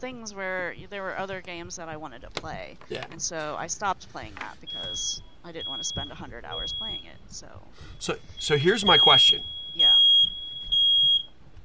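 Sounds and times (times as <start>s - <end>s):
speech: 0.0s - 10.0s
faint room noise: 0.0s - 11.6s
smoke alarm beep set off by a home oven above 400 degrees: 4.6s - 7.3s, 7.9s - 11.3s.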